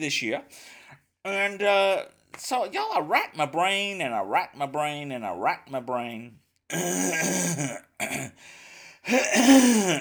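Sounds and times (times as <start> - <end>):
speech: 0.0 - 9.9
man noisily clearing his throat: 6.7 - 8.4, 9.1 - 9.9.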